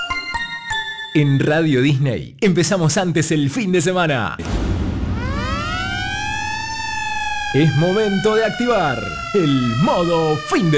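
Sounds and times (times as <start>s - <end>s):
speech: 1.2s - 4.7s, 7.5s - 10.7s
low rumble: 4.4s - 9.8s
siren sound effect wailing on radio: 4.4s - 10.7s.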